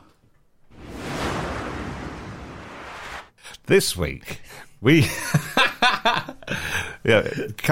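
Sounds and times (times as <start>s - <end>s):
long airy swoosh sound effect: 0.7s - 3.4s
speech: 3.7s - 7.7s.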